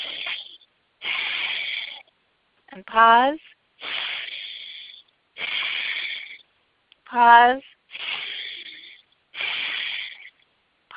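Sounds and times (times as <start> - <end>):
forceful breathing during a breathwork exercise: 0.0 - 2.2, 3.4 - 6.6, 7.9 - 10.9
speech: 2.8 - 3.9, 7.1 - 7.7.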